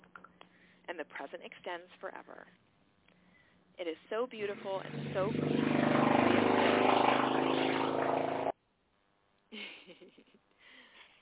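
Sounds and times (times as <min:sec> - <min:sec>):
speech: 0:00.9 - 0:02.7, 0:03.8 - 0:07.0
motorcycle engine roaring: 0:04.5 - 0:08.5.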